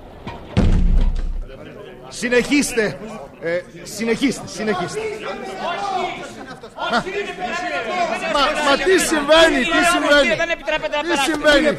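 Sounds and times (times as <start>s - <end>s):
door slamming shut: 0.5s - 1.5s
speech: 2.1s - 11.7s
laughter: 4.2s - 11.7s.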